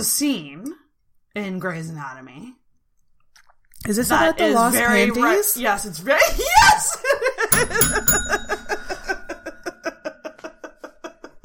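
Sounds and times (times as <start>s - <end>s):
speech: 0.0s - 2.6s, 3.8s - 8.5s
bell ringing: 7.6s - 10.0s.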